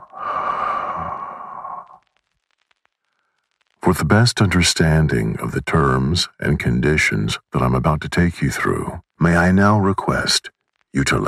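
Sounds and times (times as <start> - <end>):
deep slow exhale during a bedtime relaxation breathing exercise: 0.0 - 2.0
speech: 3.9 - 11.2.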